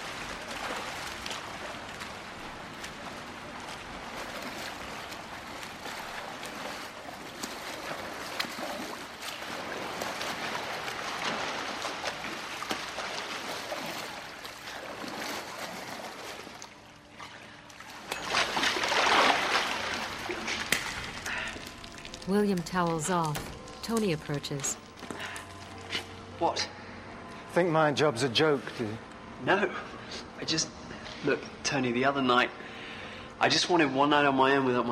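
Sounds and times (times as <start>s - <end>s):
swimmer splashing through pool water: 0.0s - 25.4s
speech: 22.3s - 24.8s, 26.4s - 26.7s, 27.6s - 29.8s, 30.5s - 32.6s, 33.4s - 34.8s.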